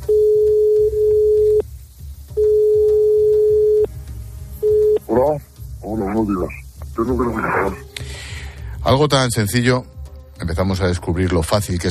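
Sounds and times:
telephone line busy signal beeps: 0.0s - 1.6s, 2.4s - 3.9s, 4.6s - 5.0s
speech: 6.2s - 7.9s, 8.9s - 11.8s.

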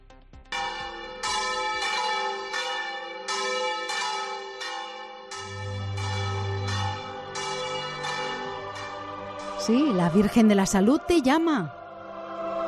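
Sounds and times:
festive church bells ringing a peal for a pilgrimage in Spain: 0.5s - 12.5s
speech: 9.6s - 11.8s.

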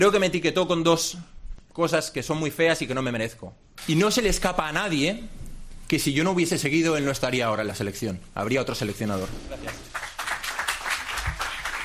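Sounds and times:
speech: 0.0s - 9.8s
applause from family and friends at a press conference: 9.6s - 11.8s.

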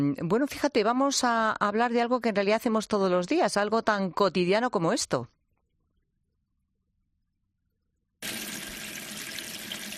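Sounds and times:
speech: 0.0s - 5.4s
water running from a kitchen tap: 8.2s - 9.9s.

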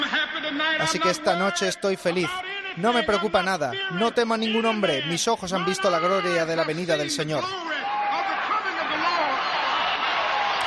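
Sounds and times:
crowd shouting and cheering: 0.0s - 10.6s
speech: 0.5s - 7.7s
large crowd applauding after a speech: 7.7s - 10.6s.

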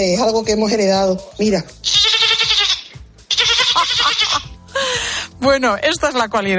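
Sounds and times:
speech: 0.0s - 2.0s, 5.4s - 6.5s
person imitating quavering goat bleats: 1.9s - 4.5s.

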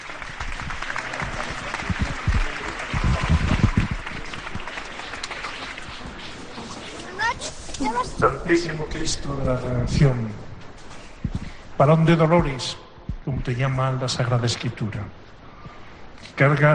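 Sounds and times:
large outdoor crowd applauding in a public square: 0.0s - 7.4s
speech: 8.2s - 10.4s, 11.8s - 15.2s, 16.4s - 16.7s.

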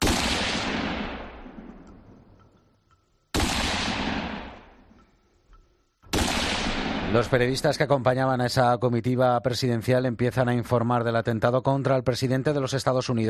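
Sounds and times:
loud gunshots with rolling echo outdoors among buildings: 0.0s - 2.4s, 3.3s - 5.0s, 6.1s - 7.9s
speech: 7.1s - 13.2s.

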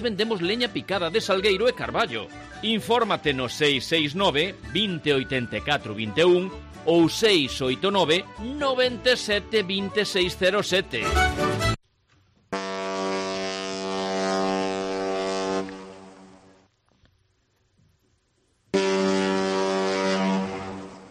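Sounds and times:
speech: 0.0s - 11.7s
deep steamship horn departing port: 12.6s - 16.5s, 18.8s - 21.1s.

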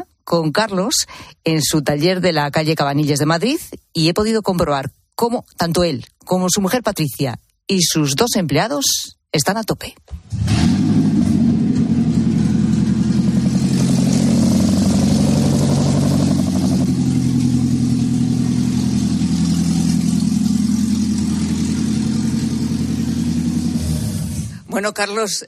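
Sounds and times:
speech: 0.3s - 10.9s, 24.8s - 25.4s
hybrid car engine revving without catalytic converter: 10.2s - 24.7s.

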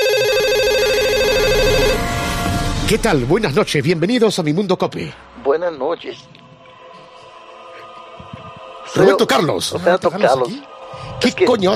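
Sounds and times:
telephone ringing in the early hours: 0.0s - 2.0s
speech: 2.9s - 6.4s, 8.9s - 11.7s.

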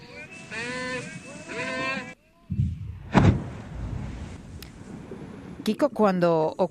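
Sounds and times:
loud high-pitched calling voices: 0.0s - 2.2s
controlled explosion of a Spanish Civil War artillery shell in the sea off Denia: 2.5s - 5.6s
speech: 5.6s - 6.7s.

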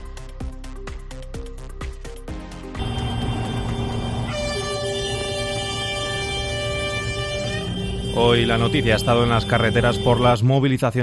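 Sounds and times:
tractor horns honking at a farmers' protest in La Rioja, Spain: 2.8s - 10.4s
speech: 8.2s - 11.0s.

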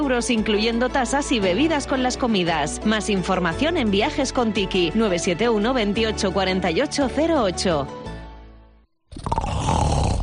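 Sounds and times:
speech: 0.1s - 8.1s
adult snoring: 9.1s - 10.2s.

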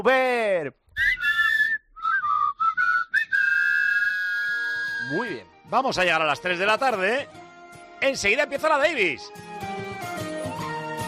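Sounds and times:
speech: 0.0s - 1.3s, 5.1s - 7.4s, 8.0s - 9.6s
whistled tune: 0.9s - 5.4s, 9.3s - 11.0s.

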